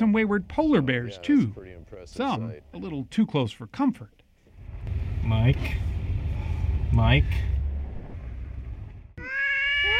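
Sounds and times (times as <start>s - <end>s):
speech: 0.0s - 4.2s, 5.2s - 5.9s, 6.9s - 7.5s
cat on an island off Japan meowing: 9.2s - 9.9s.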